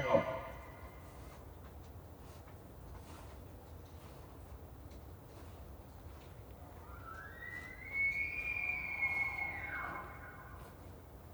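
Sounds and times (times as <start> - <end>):
bull elk bugling: 6.8 - 10.8.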